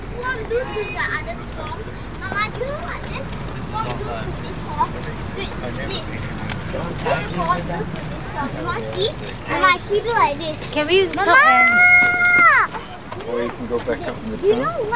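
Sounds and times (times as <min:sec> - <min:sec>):
low steady rumble of traffic: 0:00.0 - 0:14.9
several voices talking in a busy public place: 0:00.0 - 0:14.9
walking outdoors through a busy public place: 0:01.5 - 0:14.5.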